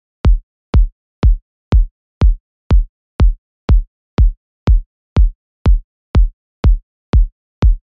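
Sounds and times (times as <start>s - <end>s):
kick drum beat at 122 BPM: 0.0s - 7.8s.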